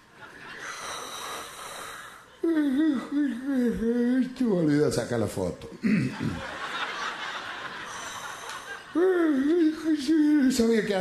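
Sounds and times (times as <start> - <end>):
laughter: 0.0 - 0.9, 5.9 - 10.5
person imitating the loud yawn of a bored bass drummer: 1.5 - 4.2, 9.0 - 9.8
speech: 2.6 - 6.6, 9.0 - 10.9.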